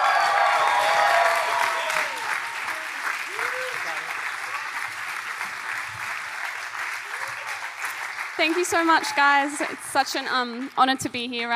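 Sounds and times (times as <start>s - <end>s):
scattered cheers: 0.0s - 5.2s, 7.0s - 7.9s
large congregation applauding: 0.0s - 11.0s
speech: 8.4s - 11.5s.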